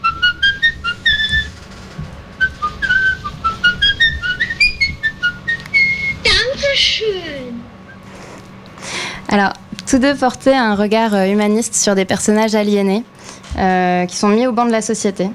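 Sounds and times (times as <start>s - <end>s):
film's recurring whistled tune, whistled by the film's director: 0.0s - 6.8s
speech: 9.3s - 15.3s.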